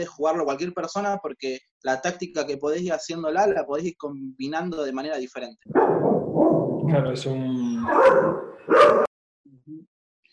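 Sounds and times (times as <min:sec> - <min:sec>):
speech: 0:00.0 - 0:09.1
faint low grumbling: 0:02.3 - 0:04.9, 0:06.8 - 0:07.9
dog barking: 0:05.7 - 0:06.6, 0:07.9 - 0:09.1.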